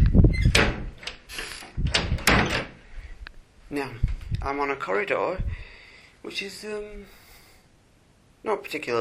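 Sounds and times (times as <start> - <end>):
glass-panelled door rattling swing: 0.0 - 2.8
glass-panelled secondary door thud: 0.3 - 2.8
speech: 3.7 - 5.5, 6.2 - 7.2, 8.4 - 8.9.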